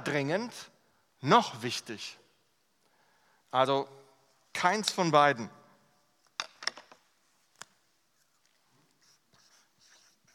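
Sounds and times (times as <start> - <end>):
speech: 0.1 - 2.2, 3.5 - 5.6
soft faint scratching: 8.0 - 10.3
marker squeaking on a board: 9.0 - 10.3.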